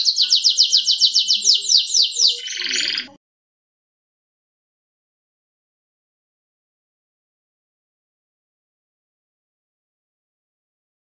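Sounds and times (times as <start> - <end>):
canary song: 0.0 - 3.2.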